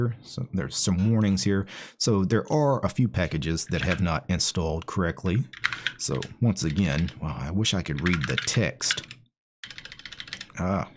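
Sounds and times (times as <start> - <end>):
speech: 0.0 - 9.2, 10.6 - 10.9
typing on a computer keyboard: 5.5 - 7.2, 8.0 - 10.9.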